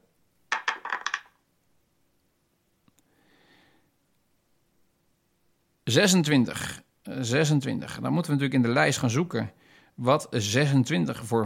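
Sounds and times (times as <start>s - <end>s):
digital dice app shake-and-roll effect of a many-sided digital die: 0.5s - 1.4s
speech: 5.9s - 11.4s.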